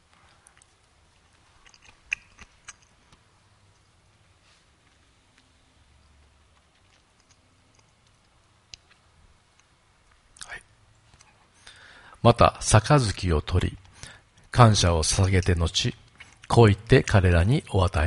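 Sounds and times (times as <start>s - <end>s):
soft mouth sounds: 0.1s - 3.8s, 4.6s - 11.9s, 15.3s - 16.6s
chewing communion bread: 0.3s - 3.3s, 6.2s - 9.7s
small mouth clicks: 0.4s - 3.3s, 6.5s - 9.7s, 16.0s - 16.5s
speech: 12.2s - 13.8s, 14.6s - 18.0s.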